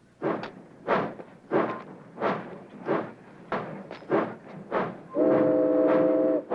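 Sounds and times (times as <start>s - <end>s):
steam train pulling away chuffing: 0.0s - 6.5s
long train whistle: 5.1s - 6.5s.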